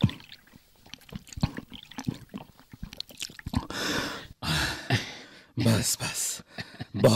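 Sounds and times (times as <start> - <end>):
thirsty person gulping water in summer heat: 0.0 - 4.0
speech: 5.6 - 6.4, 7.0 - 7.1.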